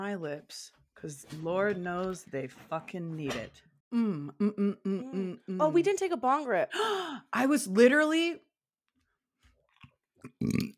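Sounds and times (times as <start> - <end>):
speech: 0.1 - 8.5, 10.3 - 10.7
throaty burp: 10.2 - 10.7.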